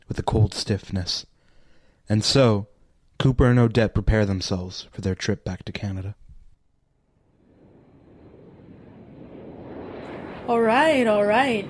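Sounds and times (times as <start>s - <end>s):
speech: 0.2s - 1.3s, 2.1s - 6.2s, 10.5s - 11.6s
passenger jet airplane landing at an international airport: 7.1s - 11.6s.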